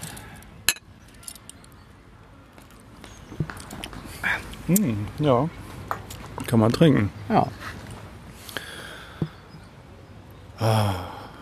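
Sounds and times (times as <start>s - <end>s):
glasses clinking in a toast: 0.7s - 1.6s
speech: 4.7s - 5.6s, 6.5s - 7.8s, 10.6s - 11.0s.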